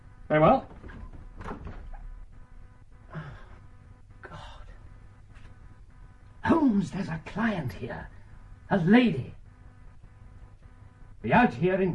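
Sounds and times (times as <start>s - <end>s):
speech: 0.3s - 0.7s, 6.8s - 9.4s, 11.2s - 11.9s
door pulled open: 0.6s - 2.1s.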